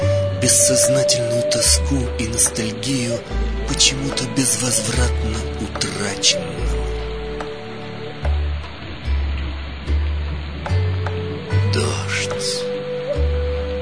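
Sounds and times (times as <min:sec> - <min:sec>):
speech: 0:00.4 - 0:06.8
rain pattering on window glass: 0:03.3 - 0:13.8.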